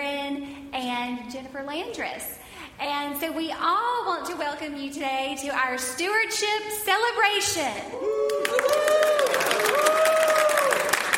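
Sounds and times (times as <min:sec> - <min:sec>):
speech: 0:01.3 - 0:08.8
crowd at a stewardship celebration applauding a choir: 0:08.1 - 0:11.1.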